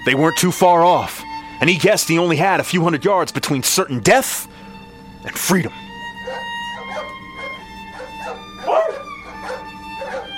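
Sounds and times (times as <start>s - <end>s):
speech: 0.0s - 4.6s, 5.2s - 5.8s
dogs barking: 6.2s - 10.3s.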